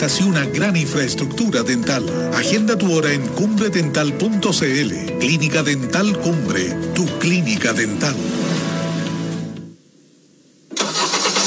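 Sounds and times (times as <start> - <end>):
speech: 0.0 - 8.4
car engine starting: 7.6 - 9.7, 10.7 - 11.4.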